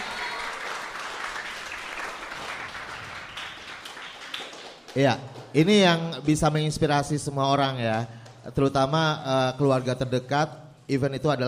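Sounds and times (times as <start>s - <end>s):
audience applauding: 0.0s - 5.5s
speech: 5.0s - 11.4s.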